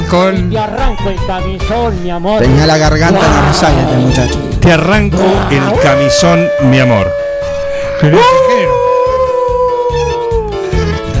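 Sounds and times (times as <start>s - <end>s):
speech: 0.1s - 7.2s, 8.0s - 8.5s
long drawn-out howl: 5.4s - 10.4s.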